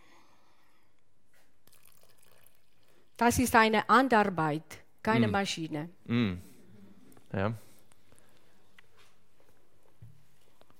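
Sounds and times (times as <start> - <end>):
water pouring into a bowl of focaccia dough: 1.6 - 3.2
speech: 3.2 - 6.5, 7.3 - 7.6.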